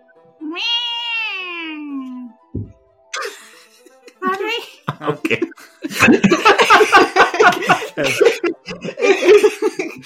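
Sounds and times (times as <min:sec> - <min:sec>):
speech: 0:00.4 - 0:00.7
person imitating a cat with a long meow: 0:00.4 - 0:02.3
brief low thump: 0:02.5 - 0:02.8
laughter: 0:03.2 - 0:04.2, 0:04.8 - 0:10.0.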